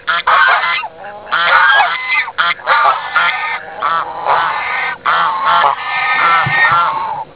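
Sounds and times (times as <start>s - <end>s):
geese: 0.0s - 7.3s.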